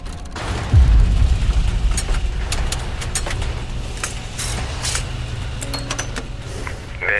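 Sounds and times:
sharp cracks: 0.0 - 7.1
cannon fire striking a ship's hull: 0.4 - 5.6.

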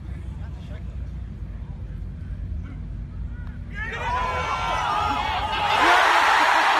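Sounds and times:
low crowd murmur: 0.0 - 6.7
crowd roaring and cheering after a made golf putt: 3.8 - 6.7.

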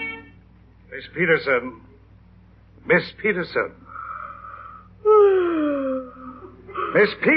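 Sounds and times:
speech: 1.0 - 1.9, 2.8 - 3.9, 7.0 - 7.3
long voiced yawn: 4.0 - 6.6.

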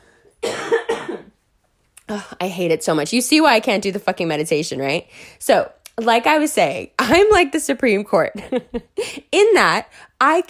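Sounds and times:
person coughing harsh wet chesty coughs: 0.4 - 1.4
speech: 2.1 - 10.4.

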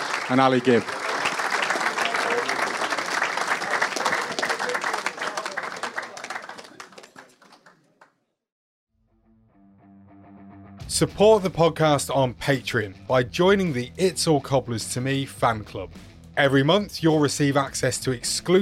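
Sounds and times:
audience applause: 0.0 - 8.1
speech: 0.3 - 1.0, 11.0 - 18.6.

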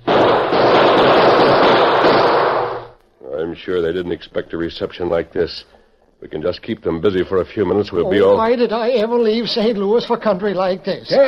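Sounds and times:
loud dense exchange of gunfire: 0.0 - 3.0
speech: 3.6 - 11.2.

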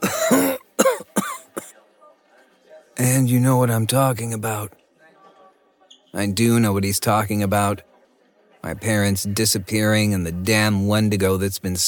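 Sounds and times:
man's raspy hacking cough: 0.0 - 1.8
speech: 3.0 - 4.8, 6.1 - 7.9, 8.6 - 11.8.

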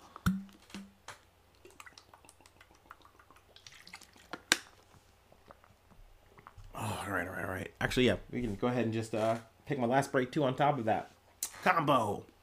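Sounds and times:
person drinking water with sips and gulps: 1.6 - 4.6, 5.4 - 7.0
speech: 7.1 - 12.3.

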